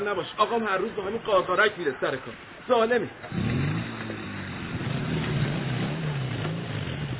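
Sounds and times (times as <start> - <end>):
speech: 0.0 - 3.5
motorcycle engine revving: 3.2 - 7.1.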